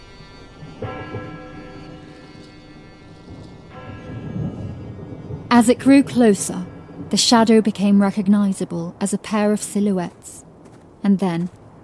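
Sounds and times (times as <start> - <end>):
bell tolling from within a town: 0.0 - 7.8
low rolling thunder from a gathering storm: 3.2 - 9.7
speech: 5.6 - 10.4, 11.0 - 11.6.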